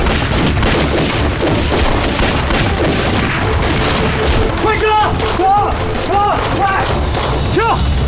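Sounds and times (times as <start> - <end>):
dense volley of gunfire with booming blasts: 0.0 - 7.6
voices shouting: 4.5 - 7.9.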